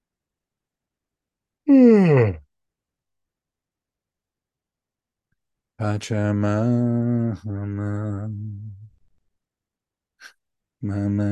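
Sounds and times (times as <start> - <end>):
loud drawn-out yawn: 1.7 - 2.4
speech: 1.7 - 2.4, 5.8 - 8.8, 10.8 - 11.2.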